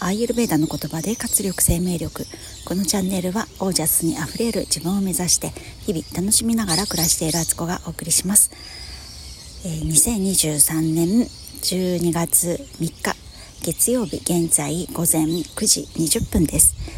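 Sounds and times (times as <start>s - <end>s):
speech: 0.0s - 8.9s, 9.6s - 16.9s
short high bird chirps in a park: 0.0s - 16.9s
wind in a park: 0.0s - 16.9s.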